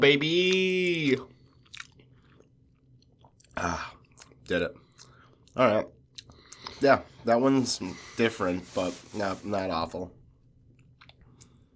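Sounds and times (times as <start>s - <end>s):
speech: 0.0s - 1.3s, 3.6s - 3.9s, 4.5s - 4.8s, 5.6s - 5.9s, 6.8s - 10.2s
crisp snack being bitten and chewed: 1.6s - 5.1s.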